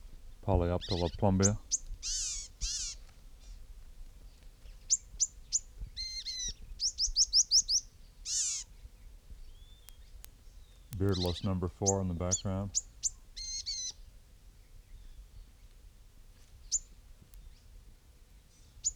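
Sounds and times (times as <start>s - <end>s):
gnatcatcher giving high thin call notes: 0.4s - 1.7s, 9.9s - 12.8s
speech: 0.5s - 2.3s, 11.0s - 12.9s.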